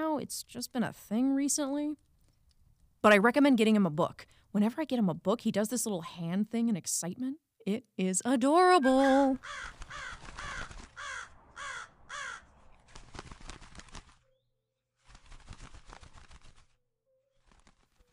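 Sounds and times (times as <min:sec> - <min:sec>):
speech: 0:00.2 - 0:02.1, 0:03.0 - 0:10.2
crow cawing: 0:09.4 - 0:12.6
rustling and fluttering: 0:09.4 - 0:18.1.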